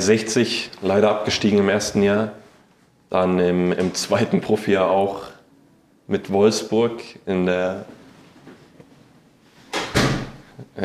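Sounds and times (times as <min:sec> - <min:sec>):
speech: 0:00.0 - 0:02.4, 0:03.1 - 0:05.3, 0:06.1 - 0:08.0, 0:10.6 - 0:10.8
door swinging open: 0:09.7 - 0:10.5.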